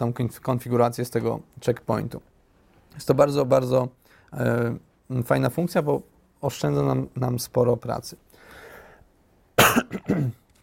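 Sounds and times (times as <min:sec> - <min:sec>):
speech: 0:00.0 - 0:02.3, 0:02.9 - 0:08.3, 0:09.8 - 0:10.4
cough from a person with a cold: 0:09.6 - 0:10.4.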